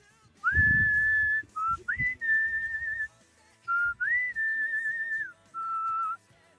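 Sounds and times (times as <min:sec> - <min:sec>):
person whistling an anime opening theme melody: 0:00.4 - 0:06.2.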